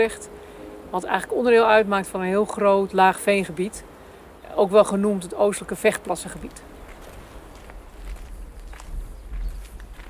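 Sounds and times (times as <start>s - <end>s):
speech: 0.0s - 3.9s, 4.5s - 6.7s
footsteps crunching over leafy woodland ground: 6.4s - 10.0s.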